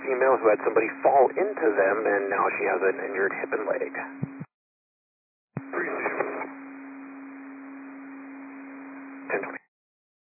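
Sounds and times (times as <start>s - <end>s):
radio static and crackle bursts: 0.1s - 4.5s, 5.6s - 6.5s
speech: 0.4s - 4.2s.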